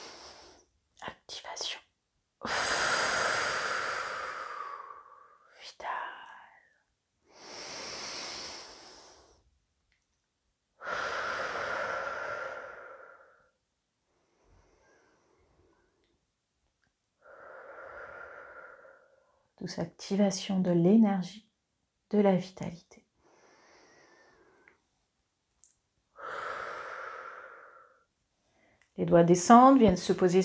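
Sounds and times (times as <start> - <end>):
slow breathing in and out during a guided breathing exercise: 0.0 - 0.7, 2.4 - 5.6, 6.6 - 9.5, 10.8 - 16.2, 17.2 - 19.5, 23.2 - 25.2, 26.1 - 28.9
speech: 19.6 - 21.4, 22.1 - 22.9, 29.1 - 30.4.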